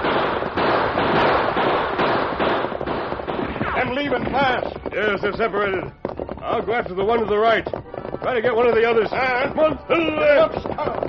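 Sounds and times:
outlaws' guns firing during a stagecoach holdup: 0.0s - 5.7s
speech: 4.0s - 11.0s.

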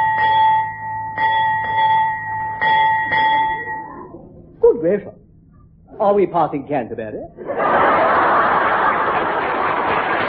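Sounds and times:
ship's bell striking eight bells: 0.0s - 3.9s
speech: 4.8s - 5.2s, 6.0s - 8.1s
laughter: 7.4s - 10.2s.

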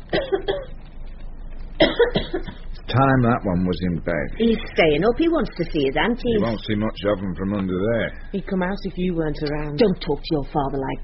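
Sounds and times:
person coughing from beneath a table: 0.1s - 0.7s, 1.8s - 2.7s
speech: 2.3s - 11.0s.

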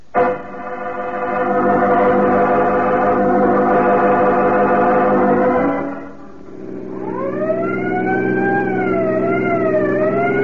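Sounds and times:
dense engine drone: 0.0s - 10.4s
car siren wailing: 0.2s - 10.4s.

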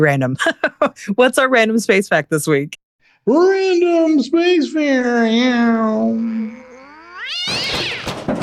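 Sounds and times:
speech: 0.0s - 6.6s
cat meowing and yowling: 5.9s - 8.3s.

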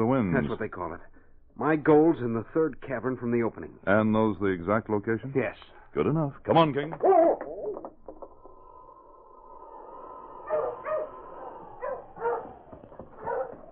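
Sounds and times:
speech: 0.0s - 7.5s
dog barking: 10.4s - 13.7s.

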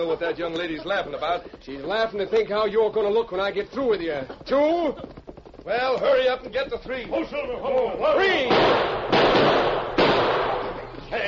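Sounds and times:
speech: 0.0s - 9.6s
gunshots shooting a gun out of a man's hand: 8.2s - 10.9s.

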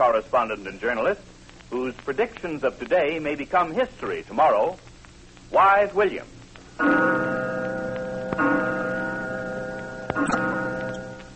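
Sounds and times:
speech: 0.0s - 4.9s, 5.5s - 7.5s
clock striking with rich chimes: 6.8s - 11.2s.

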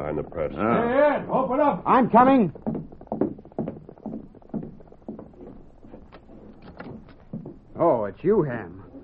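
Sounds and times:
speech: 0.1s - 2.7s, 7.8s - 8.8s
hoofbeats of several horses passing by: 1.6s - 7.8s.

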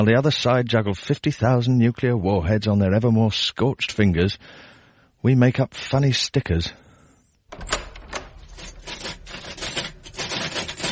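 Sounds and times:
speech: 0.0s - 6.8s
typing on a typewriter: 7.6s - 10.9s.

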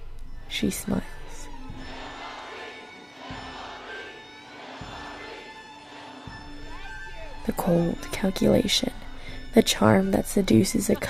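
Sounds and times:
speech: 0.6s - 1.2s, 7.5s - 11.0s
rhythmic chanting or stomping: 1.6s - 7.0s
dense political rally crowd cheering and roaring: 1.7s - 7.5s.

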